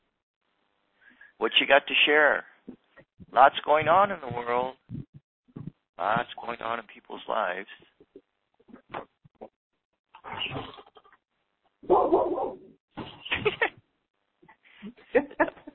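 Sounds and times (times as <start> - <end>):
speech: 1.4 - 5.0, 6.0 - 7.9
dog barking: 11.8 - 12.6.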